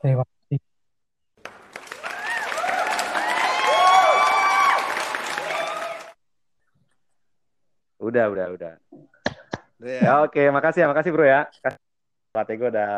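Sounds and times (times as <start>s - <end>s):
speech: 0.0s - 0.3s, 8.1s - 8.9s, 9.8s - 11.8s, 12.4s - 12.9s
steady applause: 1.4s - 6.2s
excited shouts and whoops: 2.0s - 6.2s.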